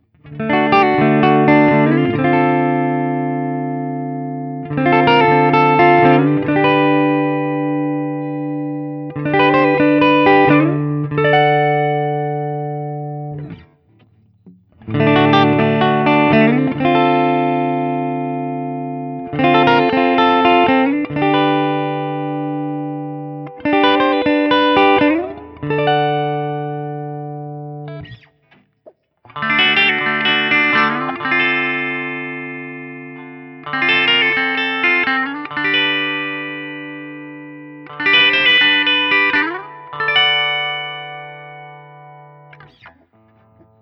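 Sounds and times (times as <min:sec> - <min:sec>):
sunburst guitar playing: 0:00.0 - 0:43.8.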